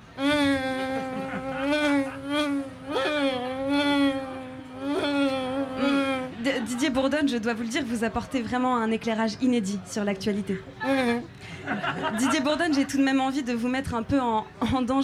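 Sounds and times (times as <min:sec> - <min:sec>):
human voice imitating a bee buzzing: 0:00.0 - 0:06.4, 0:10.8 - 0:11.3
laughter: 0:00.8 - 0:03.0, 0:10.7 - 0:13.0
speech: 0:06.9 - 0:11.1, 0:12.0 - 0:15.0.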